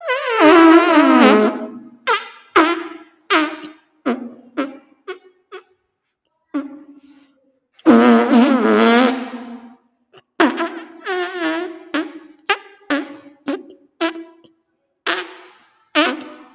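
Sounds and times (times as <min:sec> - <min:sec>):
farts: 0:00.0 - 0:05.7, 0:07.9 - 0:09.7, 0:10.4 - 0:14.5, 0:15.1 - 0:16.5.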